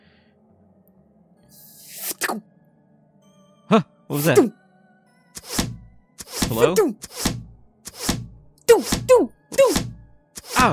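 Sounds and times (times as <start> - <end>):
speech: 2.2 - 2.5, 3.7 - 4.6, 6.5 - 7.2
thrown arrows striking: 5.4 - 10.7.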